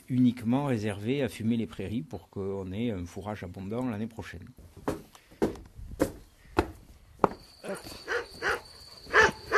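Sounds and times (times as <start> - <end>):
speech: 0.2 - 4.7
dog barking: 8.1 - 9.5.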